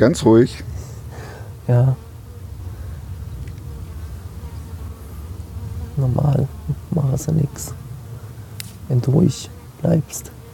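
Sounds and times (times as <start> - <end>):
speech: 0.0 - 0.8, 1.7 - 2.0, 6.0 - 7.8, 8.9 - 10.4
honeybees buzzing at a beehive: 0.0 - 10.5.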